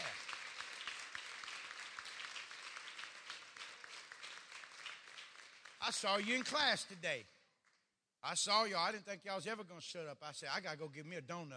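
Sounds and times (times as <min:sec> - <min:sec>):
audience applause with many hands clapping: 0:00.0 - 0:06.6
speech: 0:05.9 - 0:07.3, 0:08.2 - 0:11.5.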